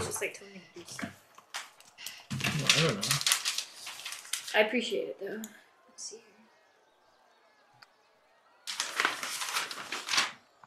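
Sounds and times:
papers shuffling: 0:00.0 - 0:04.7, 0:08.7 - 0:10.6
speech: 0:00.2 - 0:01.2, 0:02.7 - 0:03.3, 0:04.5 - 0:06.3.

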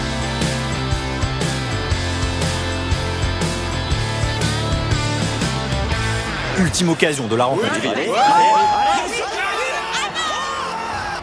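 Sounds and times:
noisy crowd with excited shouts and cheering: 0:00.0 - 0:11.2
speech: 0:06.6 - 0:09.6
man yelling loudly: 0:07.6 - 0:11.2.

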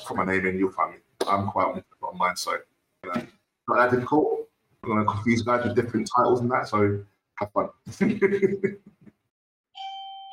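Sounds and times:
speech: 0:00.1 - 0:09.0
electronic doorbell chime: 0:09.7 - 0:10.3.

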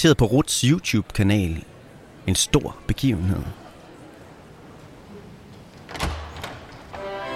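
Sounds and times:
speech: 0:00.0 - 0:01.7, 0:02.3 - 0:03.6
large banquet hall door latch and handle clunks: 0:05.9 - 0:06.9.

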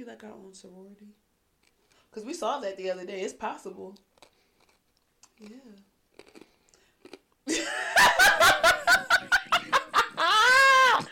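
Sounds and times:
speech: 0:00.0 - 0:01.3, 0:02.1 - 0:04.1, 0:05.4 - 0:05.9
loud wet chewing: 0:04.1 - 0:07.3
laughter: 0:07.5 - 0:11.1.

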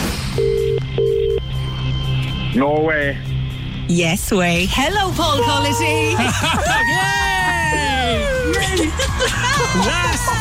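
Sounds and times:
electronic phone tones dialing a prize draw winner: 0:00.4 - 0:01.5
speech: 0:02.6 - 0:10.3
laughter: 0:05.5 - 0:10.3.

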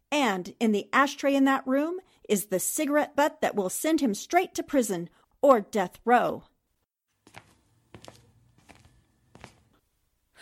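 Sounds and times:
speech: 0:00.3 - 0:06.5
soft footsteps of a man sneaking toward a door: 0:07.1 - 0:09.9.

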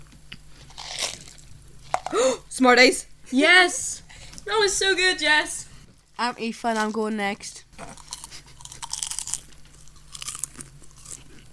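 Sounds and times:
popcorn being chewed: 0:00.3 - 0:02.2, 0:07.8 - 0:11.5
speech: 0:02.6 - 0:05.6, 0:06.2 - 0:08.0.

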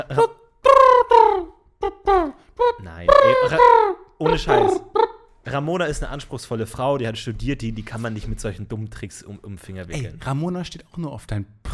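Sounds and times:
speech: 0:00.0 - 0:00.4, 0:03.5 - 0:04.9, 0:05.5 - 0:11.7
human voice imitating pigeon cooing: 0:00.0 - 0:05.3.

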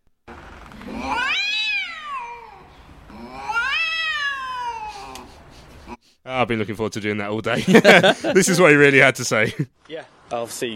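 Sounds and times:
cat meowing: 0:00.9 - 0:05.3
speech: 0:06.3 - 0:10.7
laughter: 0:07.6 - 0:08.6.

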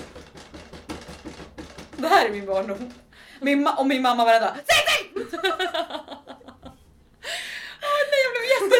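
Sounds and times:
speech: 0:02.0 - 0:06.0
woman breathing quickly: 0:03.1 - 0:03.4, 0:07.1 - 0:07.9
laughter: 0:05.2 - 0:06.8.

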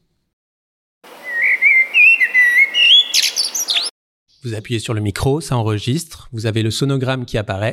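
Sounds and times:
common blackbird singing fluting warbling phrase: 0:01.1 - 0:04.5
speech: 0:04.4 - 0:07.7.

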